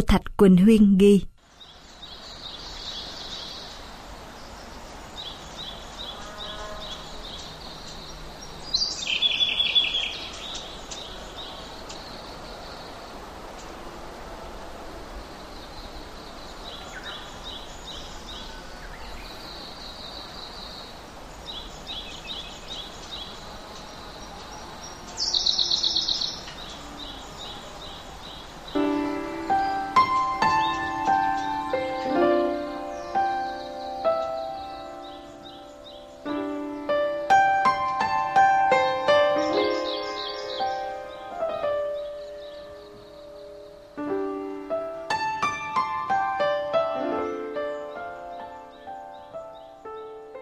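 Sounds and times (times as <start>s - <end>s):
speech: 0.1s - 1.3s
birds chirping: 0.6s - 13.8s, 15.1s - 50.4s
soft outdoor hiss: 1.4s - 50.4s.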